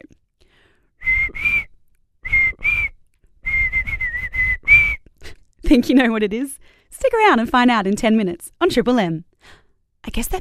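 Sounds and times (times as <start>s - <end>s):
person whistling a pop song melody: 1.0s - 5.1s
speech: 5.7s - 10.3s.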